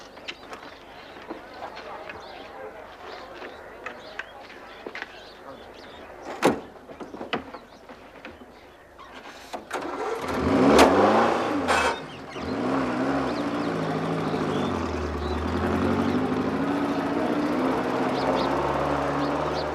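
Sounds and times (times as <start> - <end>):
open car engine sputtering to life: 9.1 - 19.7
open car engine droning as the car pulls away: 10.4 - 19.7.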